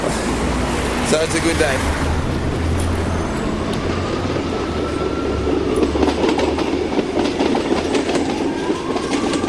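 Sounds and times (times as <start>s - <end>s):
CityRail commuter train rumbling along the rails in Sydney: 0.0s - 9.4s
speech: 1.1s - 2.4s
commuter train wheels clattering over track joints: 5.7s - 9.4s.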